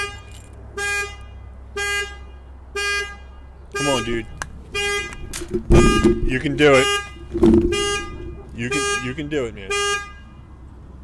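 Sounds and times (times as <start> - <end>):
car horn honking from car alarm set off by sat-on keys: 0.0 - 10.5
speech: 4.0 - 4.4, 5.5 - 7.9, 8.6 - 10.0
low rumbling background: 4.0 - 9.0.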